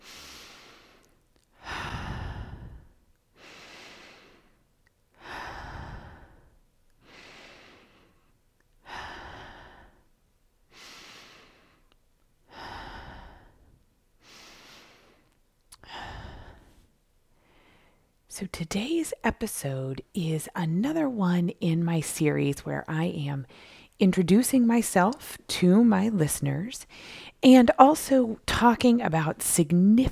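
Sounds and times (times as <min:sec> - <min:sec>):
deep breaths in through the nose and out through the mouth: 0:00.0 - 0:10.1, 0:10.7 - 0:18.2, 0:23.5 - 0:24.0, 0:26.9 - 0:27.4
speech: 0:18.4 - 0:30.1.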